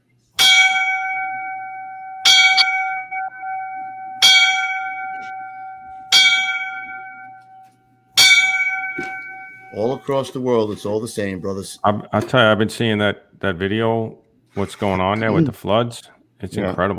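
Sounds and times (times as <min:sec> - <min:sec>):
bell rung for fallen firefighters: 0:00.4 - 0:10.2
speech: 0:09.8 - 0:16.9.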